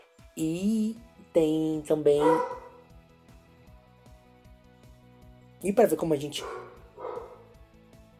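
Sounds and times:
speech: 0.4s - 2.6s, 5.6s - 6.6s
dog barking: 2.1s - 2.8s, 6.4s - 7.5s.

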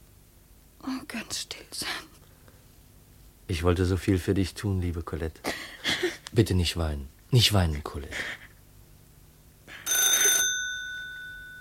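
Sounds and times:
speech: 0.9s - 2.2s, 3.5s - 8.4s
telephone bell ringing: 9.8s - 11.5s.

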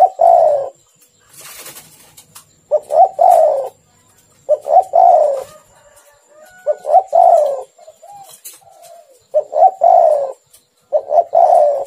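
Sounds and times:
spotted dove song of coo phrases and a purring note: 0.0s - 2.0s, 2.7s - 3.8s, 4.4s - 11.8s.

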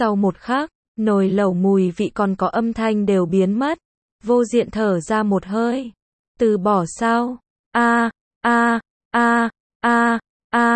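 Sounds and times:
speech: 0.0s - 10.7s
person moaning: 7.8s - 10.7s.

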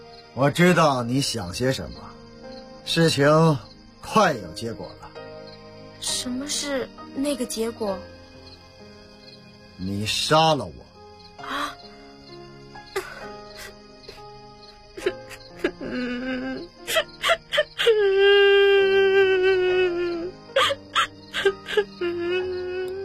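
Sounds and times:
speech: 0.4s - 2.2s, 2.8s - 5.1s, 6.0s - 8.2s, 9.8s - 11.5s
man sobbing and wailing in anguish: 15.0s - 23.0s.

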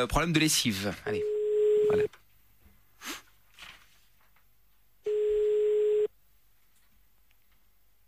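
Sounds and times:
speech: 0.0s - 1.3s, 1.9s - 2.2s
telephone ring-back tone while calling a supermarket: 1.2s - 2.1s, 5.1s - 6.1s.

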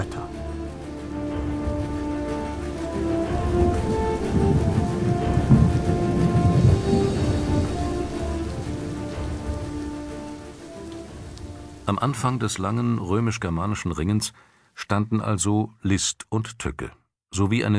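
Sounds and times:
low rolling thunder rumbles: 1.4s - 11.9s
dense steady heavy rain hissing in a thunderstorm: 1.4s - 12.4s
speech: 11.9s - 17.7s.

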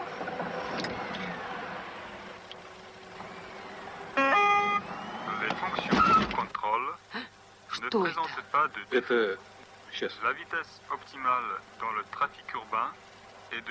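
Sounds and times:
car engine rumble as reverse gear is engaged before driving off: 0.0s - 6.6s
speech: 7.9s - 13.6s.

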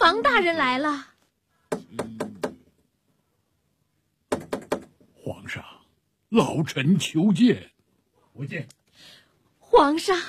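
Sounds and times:
speech: 0.1s - 1.1s, 6.3s - 7.7s, 8.4s - 10.2s
knocking on an imperial palace chamber door: 1.7s - 2.7s, 4.3s - 5.0s.

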